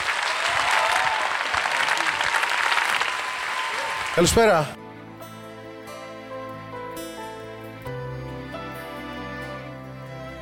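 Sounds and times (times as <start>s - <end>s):
large audience applause: 0.0s - 4.8s
speech: 4.2s - 4.8s.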